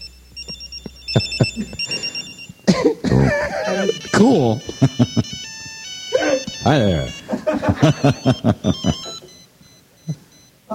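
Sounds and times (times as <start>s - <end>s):
space-age electronic cell phone ringtone: 0.0s - 10.5s
laughter: 1.1s - 2.2s, 3.0s - 9.3s
speech: 1.2s - 2.1s, 2.8s - 5.2s, 6.6s - 9.1s.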